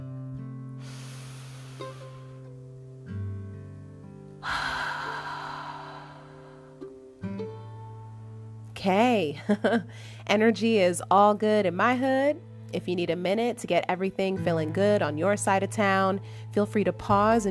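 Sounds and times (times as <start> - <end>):
soft sustained music: 0.0 - 17.5
person taking a deep breath before a guided reading: 0.8 - 2.4, 4.4 - 6.9
speech: 8.8 - 17.5.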